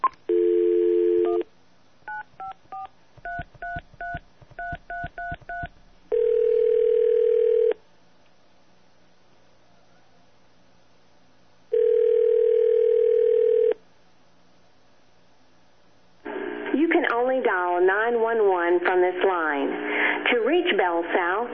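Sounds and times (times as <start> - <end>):
steady telephone dial tone: 0.3 - 1.4, 6.1 - 7.8, 11.7 - 13.8
long steady telephone line tones: 0.3 - 1.5, 2.1 - 7.8, 11.7 - 13.8
recorded voice on a telephone line: 16.6 - 21.5.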